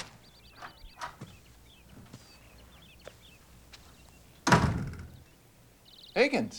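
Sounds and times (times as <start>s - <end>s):
faint birdsong: 0.0s - 6.5s
heavy door thud: 4.4s - 5.3s.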